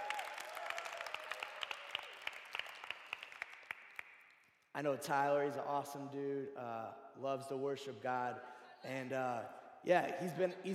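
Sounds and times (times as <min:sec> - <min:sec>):
audience applauding: 0:00.0 - 0:04.1
speech: 0:04.8 - 0:10.7.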